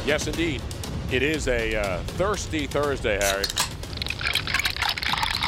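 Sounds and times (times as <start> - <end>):
speech: 0.1 - 3.7
liquid pouring: 3.2 - 5.4.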